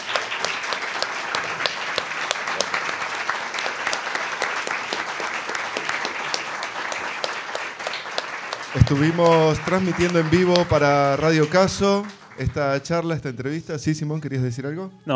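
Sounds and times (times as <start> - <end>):
live audience applauding at the close of an interview: 0.0 - 15.1
laughter: 5.8 - 15.1
speech: 8.8 - 15.1.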